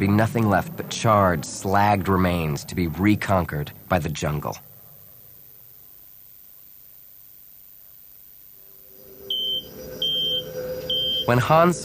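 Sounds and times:
speech: 0.0s - 4.7s, 11.3s - 11.8s
steady low hum: 0.0s - 11.8s
communication system beeping for incoming message: 8.5s - 11.8s.

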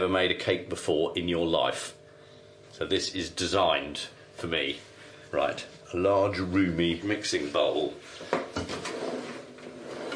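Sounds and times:
speech: 0.0s - 2.0s, 2.7s - 8.4s
wooden kitchen drawer sliding open and shut: 8.6s - 10.1s.

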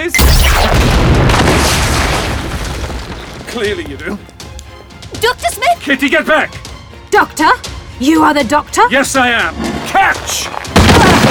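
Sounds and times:
weapon firing at an unarmed man: 0.0s - 2.6s
speech: 3.6s - 4.4s, 5.2s - 11.2s.

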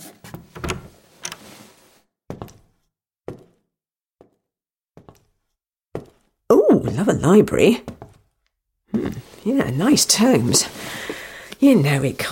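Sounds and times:
door rattling open: 0.4s - 1.4s
speech: 6.8s - 7.9s, 9.6s - 12.3s.

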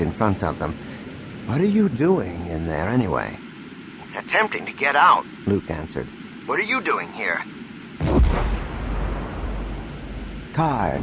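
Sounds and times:
speech: 0.2s - 0.9s, 1.5s - 3.4s, 4.2s - 7.6s, 10.6s - 11.0s
bomb explosion with long low rumbling roar: 8.0s - 11.0s.

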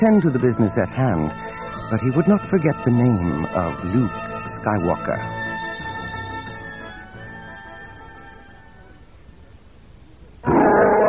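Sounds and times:
speech: 0.0s - 5.4s
Wookiee roaring in rage: 10.4s - 11.0s.

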